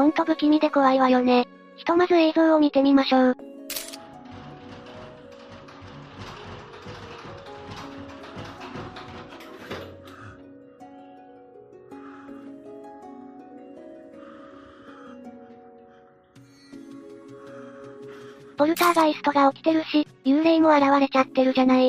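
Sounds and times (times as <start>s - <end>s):
speech: 0.0s - 3.5s, 18.6s - 21.8s
steady tonal background: 0.0s - 21.8s
mechanical rattling and clattering from a toilet room in a private house: 3.7s - 10.1s.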